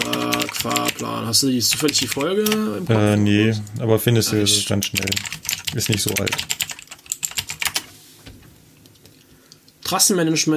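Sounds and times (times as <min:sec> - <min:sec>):
typing on a computer keyboard into a document: 0:00.0 - 0:01.1, 0:01.7 - 0:02.6, 0:04.9 - 0:07.9
speech: 0:00.6 - 0:06.6, 0:09.9 - 0:10.5.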